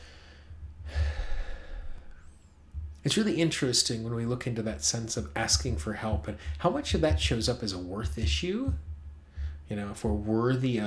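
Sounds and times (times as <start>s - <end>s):
deep breath drawn and let out in a long breathy sigh: 0.0s - 2.3s
speech: 3.0s - 8.9s, 9.7s - 10.8s.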